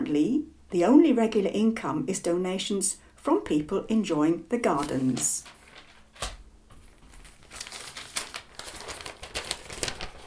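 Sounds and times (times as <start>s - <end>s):
speech: 0.1s - 5.6s
newspaper pages rustling as they are handled and turned: 4.7s - 10.2s.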